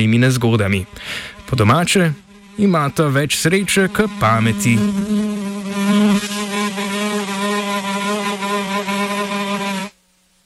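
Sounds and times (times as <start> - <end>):
speech: 0.0 - 6.3
giant fly buzzing: 0.0 - 10.0.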